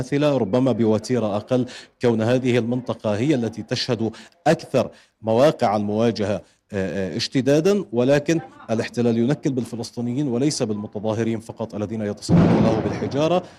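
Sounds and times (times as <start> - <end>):
speech: 0.0 - 13.5
loud explosion of a homemade bomb: 12.3 - 13.4.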